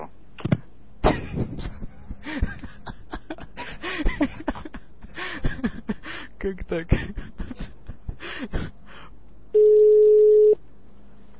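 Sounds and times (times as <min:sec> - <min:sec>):
laughter: 0:01.0 - 0:06.2, 0:06.9 - 0:08.7
speech: 0:06.4 - 0:07.2
telephone busy tone after the receiver is hung up: 0:09.6 - 0:10.6.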